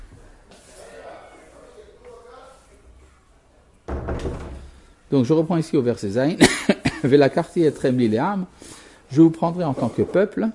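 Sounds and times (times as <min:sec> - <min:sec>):
door pulled shut with a thud: 0:03.9 - 0:04.8
speech: 0:05.1 - 0:10.5.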